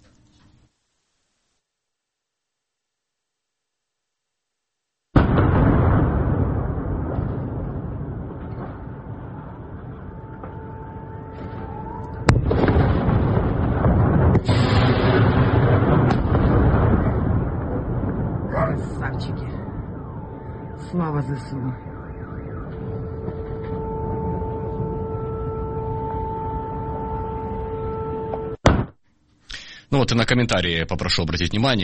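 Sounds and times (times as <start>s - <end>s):
sharp explosions cracking: 5.2s - 24.6s, 28.6s - 29.0s
heavy explosion blast with roaring rumble in a city: 5.2s - 27.9s, 28.6s - 28.9s
speech: 21.0s - 21.9s, 29.9s - 31.8s.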